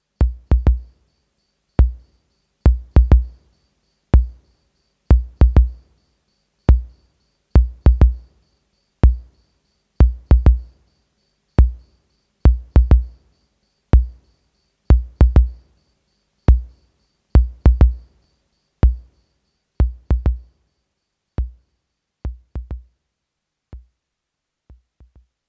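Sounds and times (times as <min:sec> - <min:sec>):
Roland CR 78 bass drum: 0:00.2 - 0:00.9, 0:01.8 - 0:02.0, 0:02.7 - 0:03.4, 0:04.2 - 0:04.4, 0:05.1 - 0:05.8, 0:07.6 - 0:08.2, 0:09.0 - 0:09.3, 0:10.0 - 0:10.7, 0:11.6 - 0:11.8, 0:12.5 - 0:13.2, 0:14.0 - 0:14.2, 0:14.9 - 0:15.6, 0:16.5 - 0:16.7, 0:17.4 - 0:18.0, 0:18.8 - 0:19.1, 0:19.8 - 0:20.5, 0:21.4 - 0:21.6, 0:22.3 - 0:22.9.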